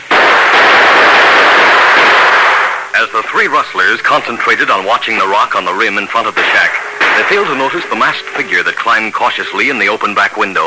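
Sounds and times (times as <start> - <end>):
gunshots fired through windows during a shootout at a shack: 0.0 - 9.6
speech: 3.0 - 10.6.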